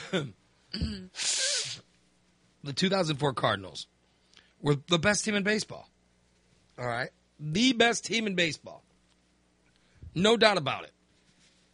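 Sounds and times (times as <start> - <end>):
speech: 0.1 - 1.3, 2.6 - 4.0, 4.6 - 5.9, 6.8 - 8.9, 10.1 - 11.0
brief grunting vocal sounds: 0.8 - 1.1
forceful nose blow: 1.1 - 1.9.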